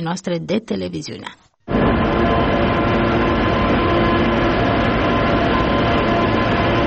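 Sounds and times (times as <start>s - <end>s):
speech: 0.0s - 2.0s
Prietenia passenger train between Chișinău and Bucharest rolling along rails: 1.7s - 6.8s.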